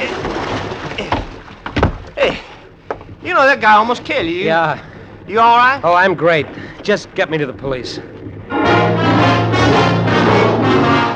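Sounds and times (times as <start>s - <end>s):
water sloshing: 0.0s - 11.1s
hollow thumps against a boat hull: 1.0s - 3.1s
speech: 3.4s - 8.1s.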